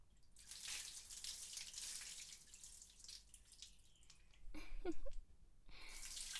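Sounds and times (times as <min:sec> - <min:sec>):
water dripping and trickling: 0:00.1 - 0:05.2, 0:05.9 - 0:06.3
water poured to rinse soap lather off a person: 0:00.3 - 0:04.4, 0:05.9 - 0:06.3.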